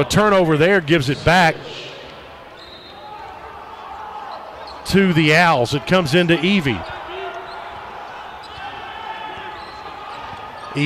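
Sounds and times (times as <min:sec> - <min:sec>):
speech: 0:00.0 - 0:01.9, 0:04.9 - 0:07.0
crowd noise: 0:00.0 - 0:10.8
basketball dribbled on the court during a game: 0:06.8 - 0:10.8.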